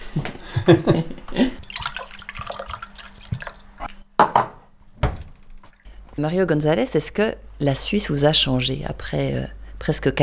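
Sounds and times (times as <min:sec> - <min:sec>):
speech: 0:00.2 - 0:01.6, 0:06.2 - 0:10.2
tap water pouring into a glass: 0:01.6 - 0:03.9.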